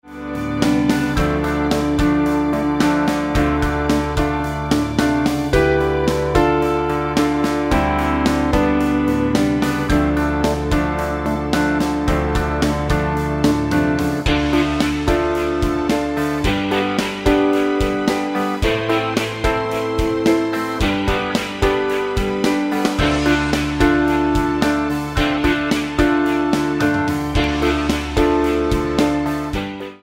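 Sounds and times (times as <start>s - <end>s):
bass fusion jam: 0.0s - 30.0s.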